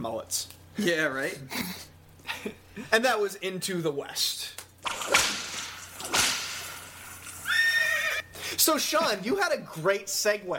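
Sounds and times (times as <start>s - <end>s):
speech: 0.0s - 5.2s, 8.6s - 10.5s
sharp cracks: 4.6s - 7.5s
horse whinnying: 7.4s - 8.3s.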